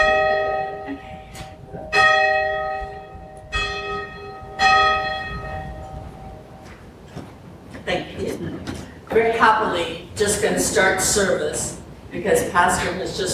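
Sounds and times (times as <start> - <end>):
church bell ringing: 0.0 - 6.8
speech: 7.9 - 13.3.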